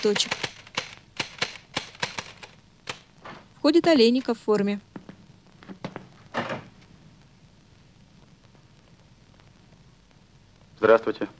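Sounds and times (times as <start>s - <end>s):
speech: 0.0s - 0.5s, 3.6s - 4.9s, 10.9s - 11.3s
typewriter keys struck by a woman typing: 0.0s - 3.1s.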